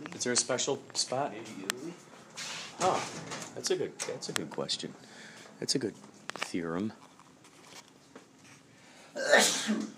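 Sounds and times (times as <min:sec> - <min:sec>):
speech: 0:00.2 - 0:01.7, 0:02.4 - 0:07.1, 0:09.7 - 0:09.9
person sneezing: 0:09.1 - 0:09.9.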